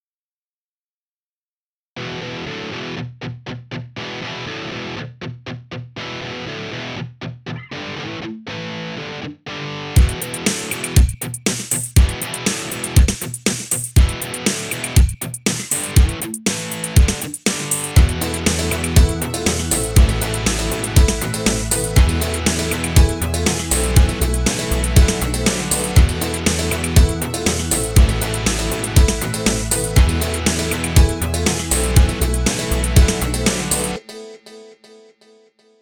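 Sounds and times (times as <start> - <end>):
looped sample music piece: 10.0 - 13.1, 14.0 - 34.2.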